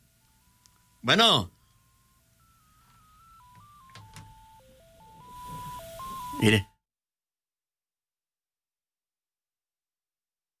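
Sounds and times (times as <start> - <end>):
faint hiss: 0.0 - 6.7
speech: 1.0 - 1.6, 6.4 - 6.7
telephone keypad dialing tones: 1.6 - 6.7.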